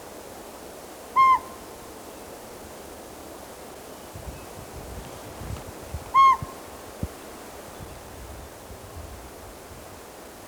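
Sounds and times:
Northern Pygmy-Owl whistling one pure note in the Ochoco Mountains, Oregon: 0:01.2 - 0:01.6.

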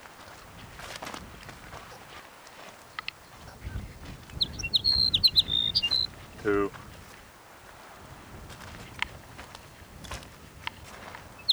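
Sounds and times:
sage sparrow singing: 0:03.0 - 0:06.8, 0:11.3 - 0:11.5
speech: 0:06.4 - 0:06.8.

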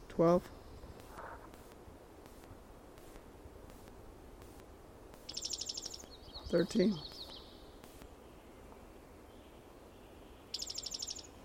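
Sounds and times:
steady low hiss: 0:00.0 - 0:11.4
speech: 0:00.2 - 0:00.6, 0:06.5 - 0:07.1
bird singing softly: 0:05.2 - 0:11.4.

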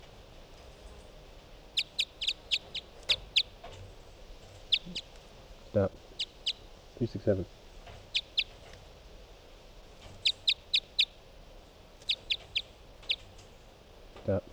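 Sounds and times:
hiss: 0:00.0 - 0:14.5
numbered study bird chirping: 0:00.8 - 0:08.8, 0:09.8 - 0:11.2, 0:12.0 - 0:13.6
speech: 0:05.7 - 0:06.0, 0:07.0 - 0:07.6, 0:14.3 - 0:14.5.

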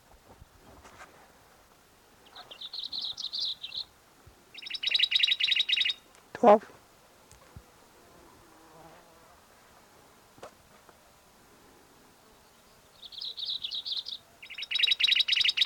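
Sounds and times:
black-throated gray warbler singing: 0:02.2 - 0:03.9, 0:04.5 - 0:06.0, 0:12.3 - 0:15.6
speech: 0:06.4 - 0:06.8.

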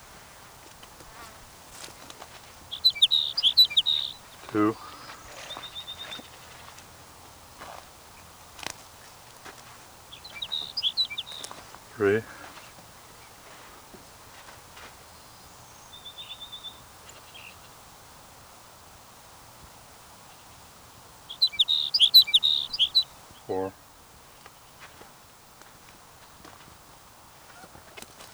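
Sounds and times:
sage sparrow song: 0:00.0 - 0:18.1, 0:20.2 - 0:23.8
bird chirps: 0:02.3 - 0:06.8, 0:10.1 - 0:12.7, 0:15.2 - 0:17.6, 0:21.2 - 0:23.7
person speaking: 0:04.4 - 0:05.1, 0:12.0 - 0:12.5, 0:23.5 - 0:23.7.

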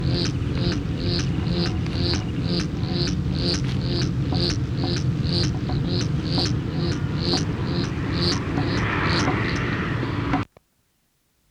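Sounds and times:
male black-chinned hummingbird display droning hum in Encinal Canyon: 0:00.0 - 0:10.4
male black-chinned hummingbird dive display pulses in Encinal Canyon: 0:00.0 - 0:10.4.

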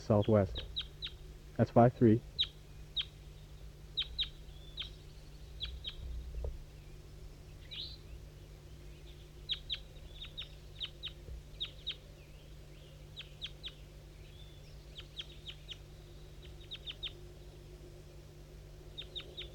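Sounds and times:
thin juvenile bird calls: 0:00.0 - 0:01.3, 0:02.2 - 0:17.7, 0:18.9 - 0:19.5
steady low hum: 0:00.0 - 0:19.5
speech: 0:00.1 - 0:00.7, 0:01.6 - 0:02.3.

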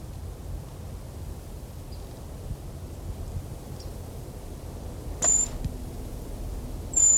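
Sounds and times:
wind: 0:00.0 - 0:07.1
brown creeper high thin whistle-like calls: 0:05.2 - 0:05.6, 0:07.0 - 0:07.1.

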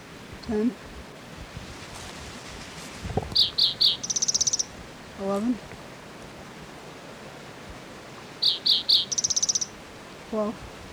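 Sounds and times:
speech: 0:00.5 - 0:01.0, 0:05.2 - 0:05.8, 0:10.3 - 0:10.7
bird chirping and trilling in high notes: 0:03.4 - 0:04.7, 0:08.4 - 0:09.7.

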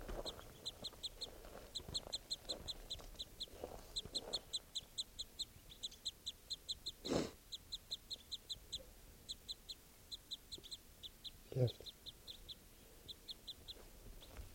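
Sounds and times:
female crossbill chip calls by the net: 0:00.1 - 0:14.4.

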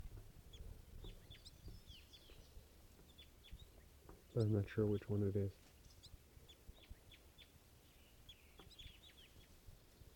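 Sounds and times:
wild bird giving short high chirping calls: 0:00.0 - 0:10.1
speech: 0:04.4 - 0:05.6.

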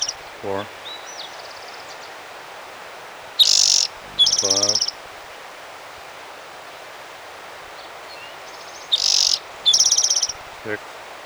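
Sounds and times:
birds outside giving high buzzy chirping trills: 0:00.0 - 0:00.7, 0:03.4 - 0:05.0, 0:08.9 - 0:10.8
speech: 0:00.4 - 0:00.8, 0:04.4 - 0:04.7, 0:10.6 - 0:10.9.

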